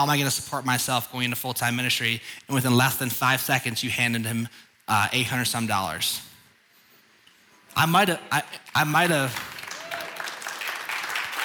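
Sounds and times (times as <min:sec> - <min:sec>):
speech: 0:00.0 - 0:06.3, 0:07.8 - 0:09.5
audience applause: 0:08.8 - 0:11.4.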